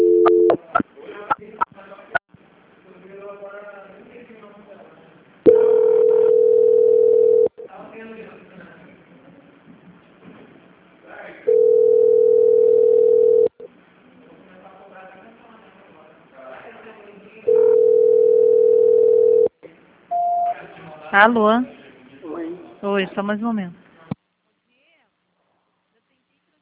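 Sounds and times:
mid-pitched telephone tones during a call transfer: 0.0 - 0.6, 5.5 - 7.6, 11.5 - 13.7, 17.5 - 19.5
speech: 21.2 - 21.7, 22.9 - 23.8.

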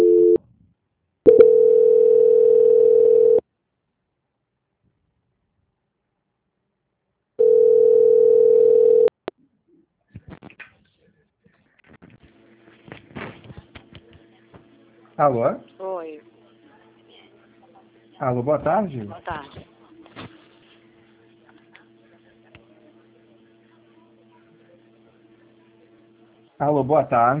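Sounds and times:
telephone tones while a call is being transferred: 0.0 - 0.4, 1.3 - 3.4, 7.4 - 9.1
speech: 15.2 - 15.8, 18.2 - 19.7, 26.6 - 27.3.

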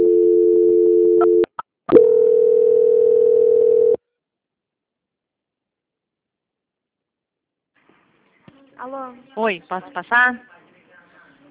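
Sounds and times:
telephone line tone during a call transfer: 0.0 - 4.0
speech: 8.9 - 10.6.

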